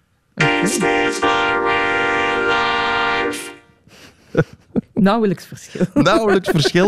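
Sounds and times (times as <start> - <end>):
song vocals processed through a vocoder: 0.4 - 3.6
speech: 0.6 - 1.8, 4.3 - 6.8
laughter: 4.0 - 5.0, 5.7 - 6.8.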